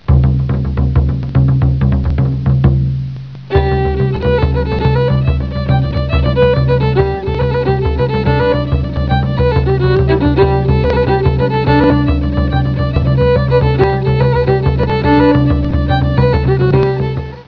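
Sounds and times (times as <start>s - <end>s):
bodhran drum: 0.0s - 17.4s.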